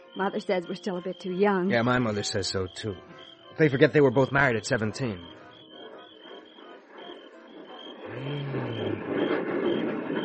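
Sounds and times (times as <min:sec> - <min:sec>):
speech: 0:00.2 - 0:05.4
jet night fighter aircraft roaring overhead: 0:08.0 - 0:10.2.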